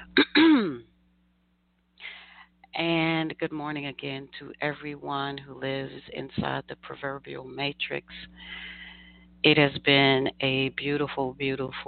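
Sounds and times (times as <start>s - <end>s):
throat clearing: 0.0s - 0.9s
speech: 2.8s - 8.8s, 9.4s - 11.8s
soft breathy exhale: 8.4s - 9.3s.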